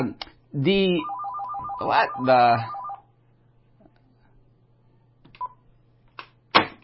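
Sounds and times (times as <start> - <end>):
low steady hum: 0.0 - 6.2
person speaking: 0.6 - 2.9
phone ringing with a spam call, rapid pulsing ringtone: 1.0 - 3.0.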